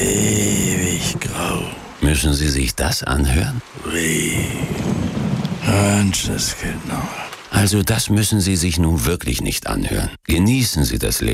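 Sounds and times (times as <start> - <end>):
voice murmur: 0.0 - 2.2, 3.6 - 5.0, 5.6 - 7.7
rain falling: 0.0 - 10.2
speech: 2.0 - 4.8, 5.7 - 11.3.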